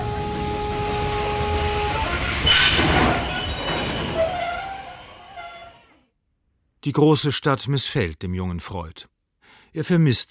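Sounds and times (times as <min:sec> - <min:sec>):
train rumbling along the tracks: 0:00.0 - 0:05.8
grinding noise: 0:01.3 - 0:05.6
speech: 0:06.8 - 0:09.1, 0:09.7 - 0:10.2.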